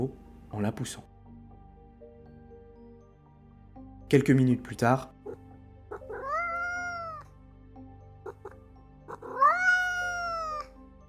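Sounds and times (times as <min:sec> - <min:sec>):
speech: 0:00.0 - 0:01.1, 0:04.1 - 0:05.2
cat meowing at a door in drawn-out rising wails: 0:05.2 - 0:07.3, 0:08.2 - 0:10.8.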